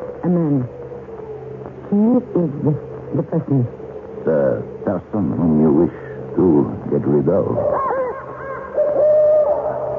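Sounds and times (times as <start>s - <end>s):
faint low hum: 0.0s - 9.9s
speech: 0.3s - 0.8s, 1.9s - 7.9s
owl hooting in a sustained wavering call: 7.4s - 9.9s.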